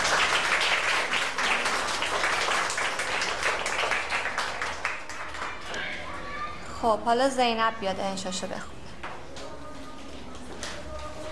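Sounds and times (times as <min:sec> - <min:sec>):
children applauding in a classroom: 0:00.0 - 0:06.2
speech: 0:06.8 - 0:08.8.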